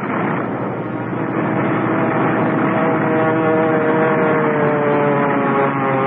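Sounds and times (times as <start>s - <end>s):
propeller plane engines roaring as the aircraft comes in to land: 0.0s - 6.0s.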